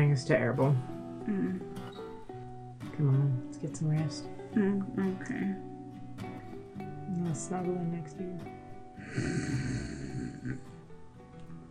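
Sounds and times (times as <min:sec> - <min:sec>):
speech: 0:00.2 - 0:01.8, 0:03.0 - 0:05.7, 0:06.8 - 0:10.7
loud raspy snoring performed by a person: 0:09.0 - 0:10.8.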